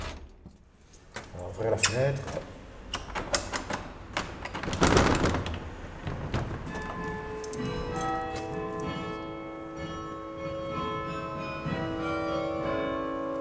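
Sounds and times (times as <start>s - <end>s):
speech: 1.4s - 2.6s
clattering knocks: 3.1s - 9.3s, 10.4s - 12.7s
belfry carillon bells ringing: 6.7s - 13.3s.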